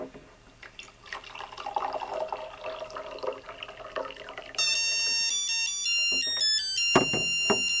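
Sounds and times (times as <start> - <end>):
hot water pouring into a cup: 0.6 - 5.0
liquid-level alert electronic musical chime: 4.6 - 7.7.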